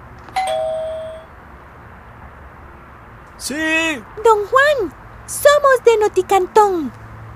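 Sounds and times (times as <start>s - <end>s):
doorbell two-note ding-dong: 0.4s - 1.3s
speech: 3.4s - 7.0s.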